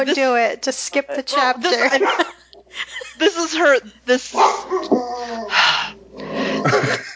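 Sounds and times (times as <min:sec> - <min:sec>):
speech: 0:00.0 - 0:05.6
laughter: 0:01.3 - 0:03.9, 0:06.4 - 0:07.1
dog growling with sharp throaty barks: 0:01.4 - 0:02.4, 0:04.3 - 0:06.9.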